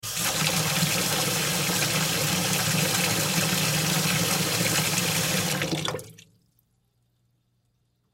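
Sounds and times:
water running into a household utility sink: 0.0s - 6.3s.

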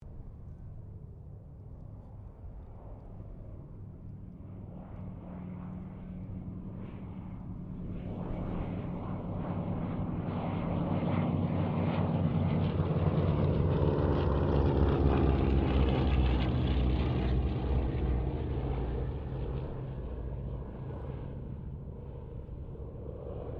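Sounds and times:
squadron of two Cessna C195 airplanes passing: 0.1s - 23.5s.

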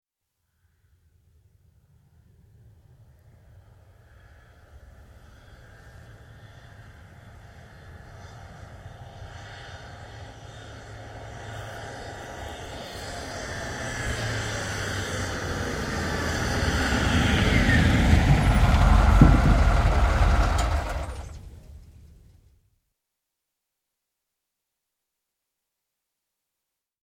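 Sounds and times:
ambulance approaching and stopping: 7.3s - 22.2s
ambulance engine idling then switched off: 15.3s - 22.2s.

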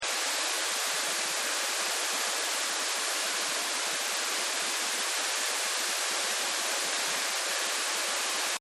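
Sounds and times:
heavy rain: 0.0s - 8.6s.

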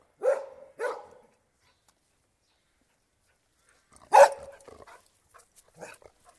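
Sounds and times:
collie dog barking outdoors: 0.2s - 1.3s, 4.1s - 4.6s.

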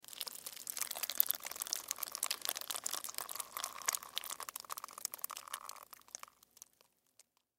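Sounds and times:
horror blood spill splatter: 0.0s - 6.3s
long blood drips: 0.0s - 7.5s.

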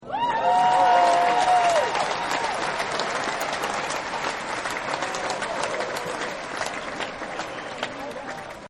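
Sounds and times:
crowd cheering woo-hoo: 0.0s - 6.4s
applause: 0.0s - 8.6s.

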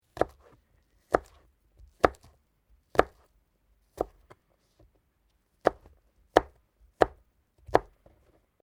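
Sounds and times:
knife chopping garlic for food preparation in a restaurant: 0.1s - 4.4s, 5.6s - 8.0s.

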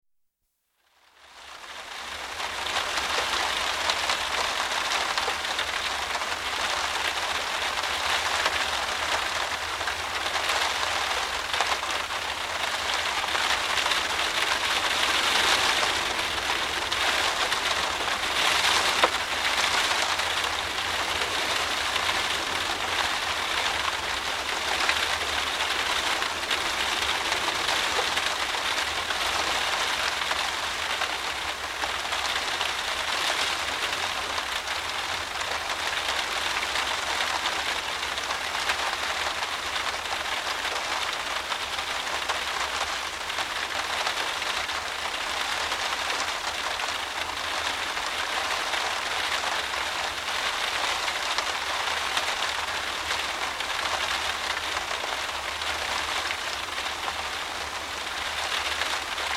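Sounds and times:
driving rain on window heard from interior: 0.8s - 59.3s.

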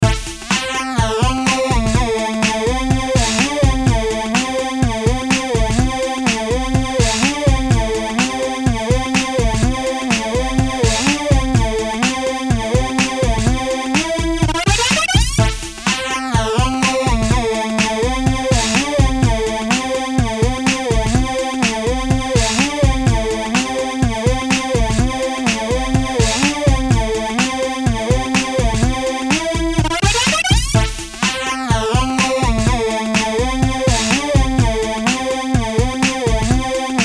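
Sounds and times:
beat with sweeper lead: 0.0s - 37.0s.

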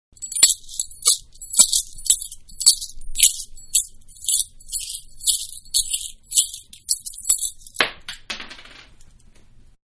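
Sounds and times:
coins tossed in hand: 0.2s - 7.9s.

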